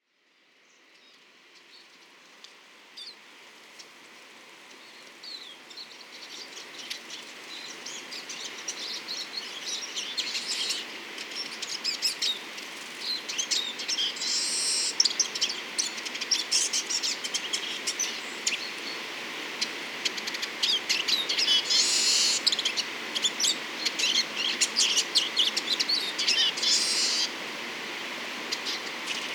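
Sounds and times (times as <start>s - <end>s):
Eurasian siskins singing and calling: 5.2s - 27.4s, 28.4s - 29.3s.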